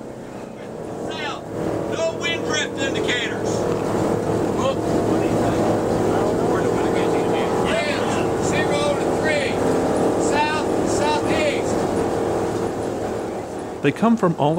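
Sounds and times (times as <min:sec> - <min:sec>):
rushing wind: 0:00.0 - 0:14.0
indistinct voices: 0:00.0 - 0:14.5
propeller engine drone in an aircraft cabin: 0:00.0 - 0:14.5
speech: 0:13.8 - 0:14.5.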